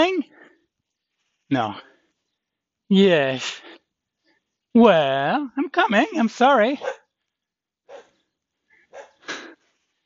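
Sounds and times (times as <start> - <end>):
speech: 1.5 - 1.9, 2.9 - 3.8, 4.7 - 7.0
dog barking in short sharp bursts: 6.8 - 7.1, 7.9 - 8.2, 8.9 - 9.2.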